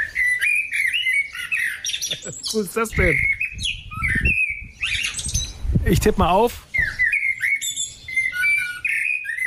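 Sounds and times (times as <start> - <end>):
blackbird singing on a small terrace: 0.0 - 9.4
speech: 2.2 - 3.8, 5.9 - 6.7.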